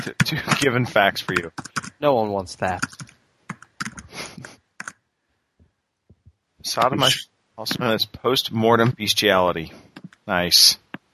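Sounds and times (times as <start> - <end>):
speech: 0.0 - 3.0, 6.6 - 10.8
fingers typing on a computer keyboard: 1.2 - 2.0, 2.8 - 4.1, 4.8 - 5.0.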